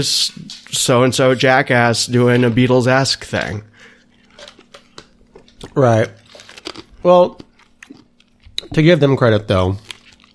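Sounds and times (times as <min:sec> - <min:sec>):
speech: 0:00.0 - 0:03.7, 0:05.7 - 0:06.2, 0:07.0 - 0:07.4, 0:08.7 - 0:09.8
low steady hum: 0:00.0 - 0:10.3
ice being chewed: 0:03.9 - 0:10.3.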